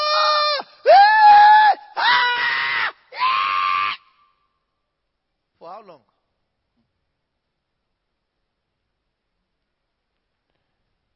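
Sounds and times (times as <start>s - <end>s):
loud drawn-out high-pitched human screams: 0.0s - 4.1s.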